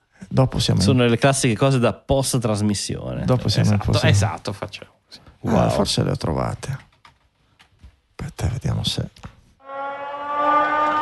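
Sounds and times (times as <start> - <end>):
speech: 0.4 - 6.9, 8.2 - 9.3
Venice acqua alta high water warning siren: 9.6 - 10.9.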